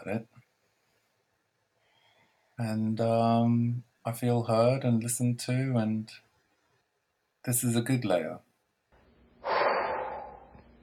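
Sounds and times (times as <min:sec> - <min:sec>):
speech: 0:00.0 - 0:00.3, 0:02.6 - 0:06.2, 0:07.4 - 0:08.5
person taking a deep breath: 0:09.4 - 0:10.6.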